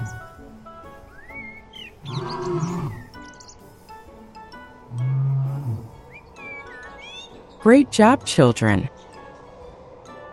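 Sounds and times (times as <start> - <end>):
birds chirping and whistling: 1.0 - 3.7, 5.0 - 7.6
lion roaring: 2.0 - 3.1, 4.9 - 6.0
speech: 7.6 - 9.0.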